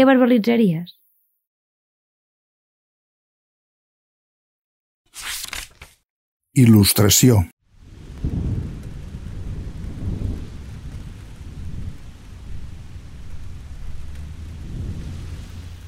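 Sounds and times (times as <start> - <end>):
speech: 0.0 - 1.0, 6.6 - 7.6
deep rolling thunder rumbling: 7.7 - 15.8
steady rain pouring: 7.7 - 15.8.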